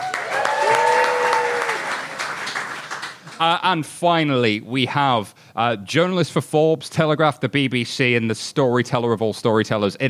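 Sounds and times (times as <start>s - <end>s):
person whooping or cheering: 0.0s - 2.0s
room full of people applauding: 0.0s - 3.6s
speech: 3.4s - 10.0s.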